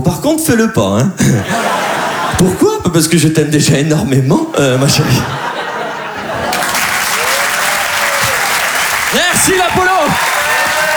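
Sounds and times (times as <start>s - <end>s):
speech: 0.1s - 1.8s, 2.4s - 5.5s
laughter: 1.2s - 2.8s, 4.6s - 10.9s
shouted cheers: 5.4s - 10.9s
large audience applauding: 6.1s - 10.9s.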